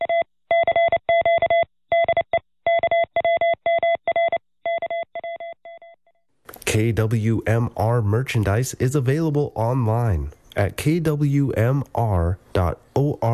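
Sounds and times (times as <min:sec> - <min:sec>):
Morse code beeps from a radio transmitting station at Point Reyes Station: 0:00.0 - 0:06.0
speech: 0:06.8 - 0:13.3.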